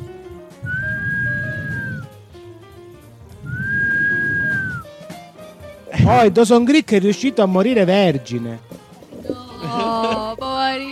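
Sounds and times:
whistling: 0:00.6 - 0:02.1, 0:03.4 - 0:04.9
low rumbling background: 0:00.6 - 0:04.8
speech: 0:06.1 - 0:08.7
laughter: 0:09.3 - 0:10.6.

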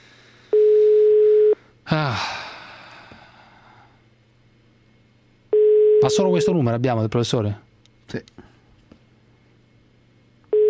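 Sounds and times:
telephone busy tone on a blocked phone line: 0:00.5 - 0:01.6, 0:05.5 - 0:06.5
speech: 0:01.9 - 0:02.4, 0:06.1 - 0:08.5.

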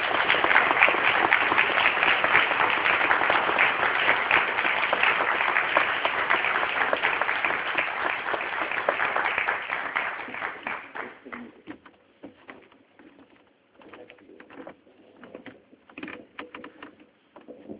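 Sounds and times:
audience applause at an international ufology congress in Argentina: 0:00.0 - 0:11.6.

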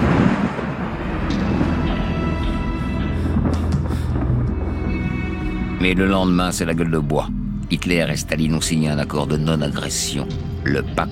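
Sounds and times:
thunder rumbling during a storm: 0:00.0 - 0:05.8
speech: 0:05.8 - 0:11.0.

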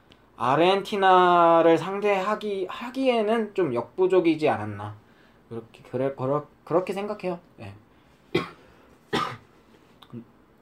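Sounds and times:
speech: 0:00.4 - 0:08.6, 0:10.1 - 0:10.3
person coughing: 0:08.3 - 0:09.5.

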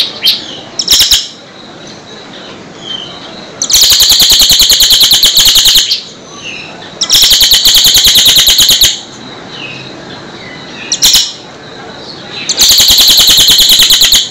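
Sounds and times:
bird singing rapid high chattering trills: 0:00.0 - 0:14.2.

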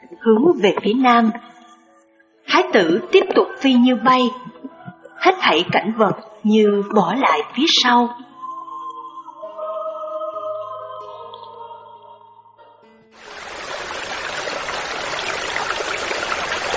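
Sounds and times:
soft sustained music: 0:00.0 - 0:16.7
speech: 0:00.2 - 0:01.5, 0:02.6 - 0:04.5, 0:05.2 - 0:08.2
river flowing: 0:13.2 - 0:16.7.

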